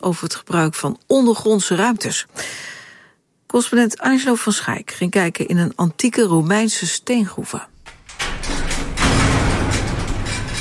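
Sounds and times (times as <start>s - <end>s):
speech: 0.0s - 2.8s, 3.5s - 7.7s
large metal gate grinding and scraping open: 7.8s - 10.5s.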